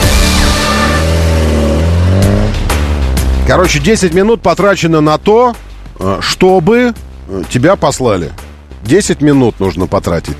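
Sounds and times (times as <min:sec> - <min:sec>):
car engine revving: 0:00.0 - 0:04.1
speech: 0:03.5 - 0:10.3.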